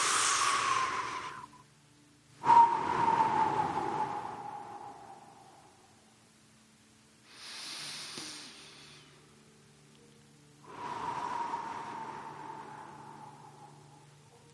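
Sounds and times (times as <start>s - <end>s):
deep belly breathing into the lowest part of the abdomen: 0.0s - 1.6s, 2.4s - 6.0s, 7.3s - 9.3s, 10.6s - 14.4s.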